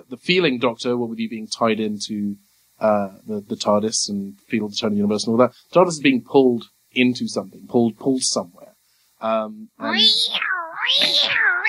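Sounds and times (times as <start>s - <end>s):
speech: 0.1s - 11.4s
person imitating a cat meow: 9.8s - 11.6s.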